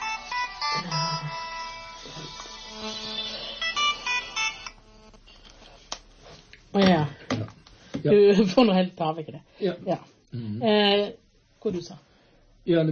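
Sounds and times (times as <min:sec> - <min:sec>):
telephone ringing with bright electronic tone bursts: 0:00.0 - 0:05.1
speech: 0:06.8 - 0:07.2, 0:08.0 - 0:12.1, 0:12.7 - 0:12.9.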